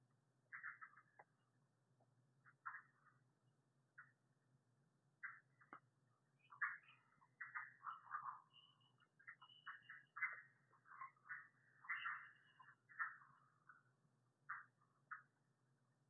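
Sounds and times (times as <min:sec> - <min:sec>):
red-eyed tree frog Agalychnis callidryas clucking calls: 0:00.5 - 0:01.2, 0:06.5 - 0:13.8, 0:14.5 - 0:15.3.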